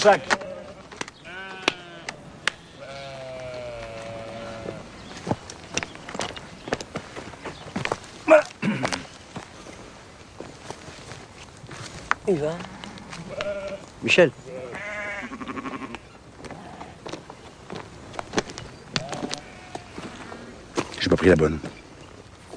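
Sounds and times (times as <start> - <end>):
speech: 0.0 - 0.4, 12.3 - 12.8, 14.0 - 14.4, 21.2 - 21.8
sheep bleating: 0.0 - 4.9, 12.6 - 16.1, 19.0 - 20.4
sheep hoof steps and shuffling clatter: 0.0 - 22.5.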